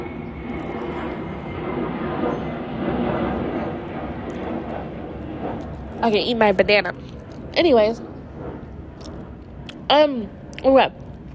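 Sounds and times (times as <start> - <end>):
airplane engine roar overhead: 0.0 - 11.3
speech: 6.0 - 8.1, 9.9 - 11.0.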